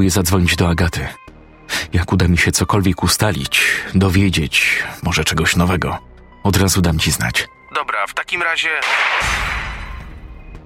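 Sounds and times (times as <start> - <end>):
speech: 0.0 - 9.7
gunshot: 8.8 - 10.2.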